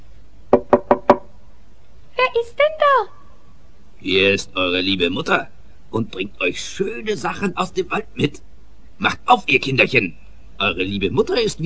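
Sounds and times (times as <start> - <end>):
knocking on a door: 0.5 - 1.3
speech: 2.3 - 3.2, 4.0 - 11.6.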